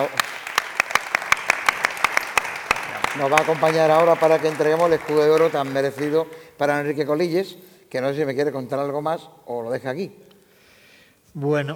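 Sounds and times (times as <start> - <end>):
speech: 0.0 - 0.2, 3.2 - 10.2, 11.4 - 11.7
audience applause at an awards gala: 0.0 - 6.6.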